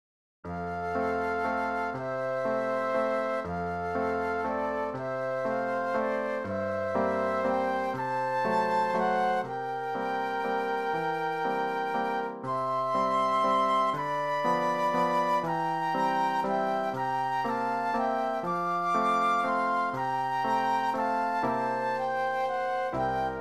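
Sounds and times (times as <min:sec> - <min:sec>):
piano playing a classical waltz: 0:00.4 - 0:23.3
classical waltz flute duet: 0:00.5 - 0:23.3.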